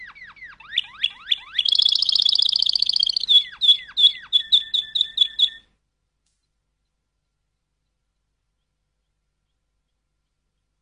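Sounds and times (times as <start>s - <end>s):
canary singing: 0.0s - 5.8s.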